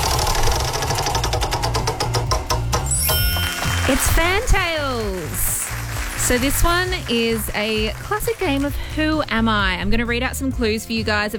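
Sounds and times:
game show prize wheel spinning with ratcheting clicks: 0.1 - 5.2
speech: 3.9 - 5.5, 6.2 - 11.3.

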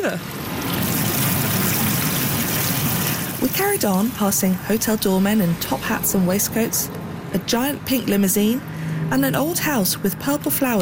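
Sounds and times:
speech: 0.0 - 0.6, 3.4 - 10.8
water trickling in a small green oasis surrounded by giant plane trees: 0.0 - 5.6.

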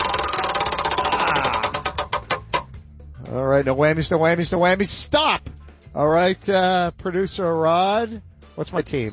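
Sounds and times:
spun prize wheel ticking: 0.0 - 2.8
speech: 3.3 - 9.1.

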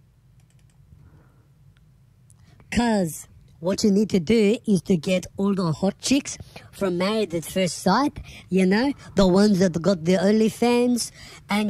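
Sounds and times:
low steady hum: 0.0 - 11.6
faint typing and clicking on a computer keyboard: 0.4 - 0.8
speech: 2.7 - 11.6.

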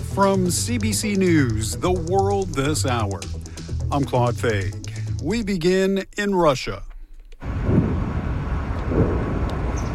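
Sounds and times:
speech: 0.2 - 6.9
steady wash of outdoor noise: 6.0 - 9.9
distant explosions rumbling: 7.5 - 9.9.

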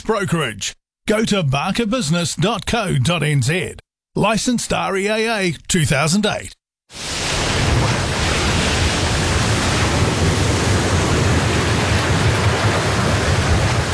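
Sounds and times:
speech: 0.1 - 7.2
ocean waves surging out at sea: 6.9 - 13.9.

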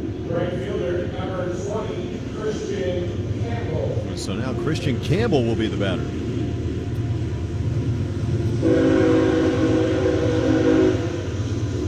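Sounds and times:
low rumble of passing rail traffic: 0.0 - 11.8
speech: 4.2 - 6.2
train horn blast outside a baseball stadium: 8.5 - 11.4.

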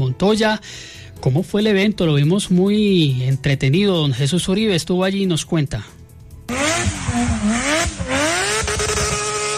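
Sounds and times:
speech: 0.2 - 6.6
race car engines roaring as cars accelerate and pass: 6.5 - 9.5
steady mechanical drone: 6.5 - 9.5.

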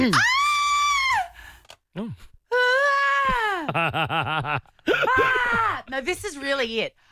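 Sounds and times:
speech: 0.0 - 0.3, 3.7 - 7.1
woman screaming with piercing sustained shrieks: 0.0 - 1.3, 2.5 - 3.7, 5.0 - 5.9.

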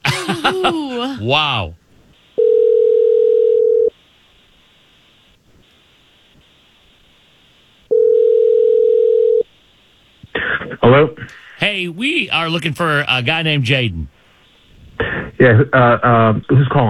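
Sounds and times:
laughter: 0.0 - 1.3
speech: 0.4 - 1.8, 10.8 - 14.2, 15.0 - 16.8
outgoing phone call ringback tones during a live radio broadcast: 2.4 - 3.9, 7.9 - 9.4
faint phone line hiss: 3.9 - 10.4, 11.2 - 15.2.

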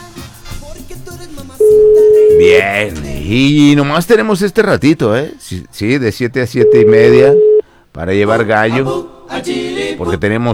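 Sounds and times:
speech: 1.0 - 10.5
telephone ringback tone on an outgoing call: 1.6 - 2.7, 6.6 - 7.6.

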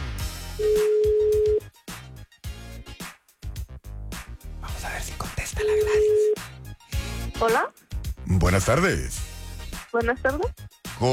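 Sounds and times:
telephone ring tone: 0.6 - 1.6, 5.7 - 6.4
speech: 7.4 - 9.3, 9.9 - 11.1.

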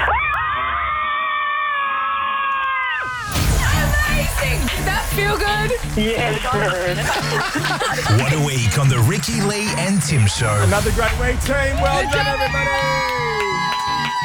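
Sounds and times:
several women screaming together: 0.1 - 3.4, 11.8 - 14.2
overlapping chatter: 3.6 - 14.2
speech: 5.1 - 13.6
laughter: 6.6 - 8.6.

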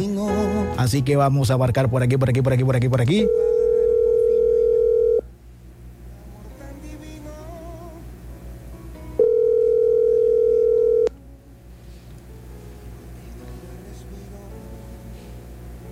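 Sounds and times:
speech: 0.8 - 3.6
telephone line ringing tone while dialing a radio listener: 3.2 - 5.2, 9.2 - 11.1.

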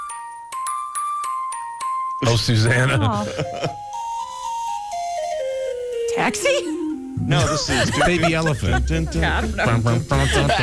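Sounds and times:
ice cream truck jingle in xylophone-like tones: 0.0 - 7.2
speech: 2.2 - 3.8, 6.2 - 10.6
laughter: 2.7 - 3.8, 7.3 - 10.6.

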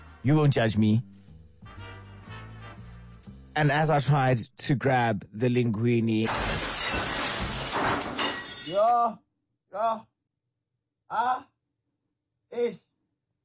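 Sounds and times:
speech: 0.2 - 1.2, 3.6 - 6.6, 8.7 - 10.1, 11.1 - 11.5, 12.5 - 12.9
glass jar of pasta sauce shattering on a white tiled floor: 6.2 - 8.8.

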